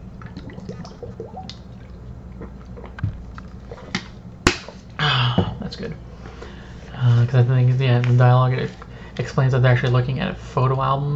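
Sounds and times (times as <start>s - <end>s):
water being poured: 0.0s - 4.3s
person sipping and gulping water: 0.2s - 4.2s
speech: 5.7s - 6.1s, 7.0s - 11.1s.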